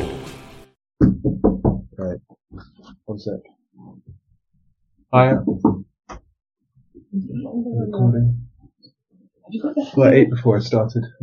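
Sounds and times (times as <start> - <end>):
knocking on a door: 1.0 - 1.9, 5.3 - 5.9
speech: 1.0 - 4.0, 5.1 - 5.9, 7.2 - 8.4, 9.5 - 11.2.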